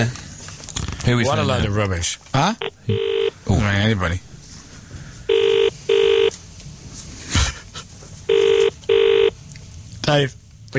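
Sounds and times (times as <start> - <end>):
speech: 0.0 - 0.2, 1.0 - 4.3, 10.1 - 10.7
telephone ringing in electronic double bursts: 2.6 - 3.4, 5.3 - 6.4, 8.3 - 9.3.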